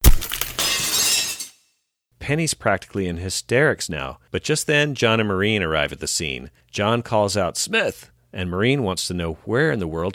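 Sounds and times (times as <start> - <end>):
mirror glass shattering from shovel blows: 0.0 - 1.6
speech: 2.3 - 10.1.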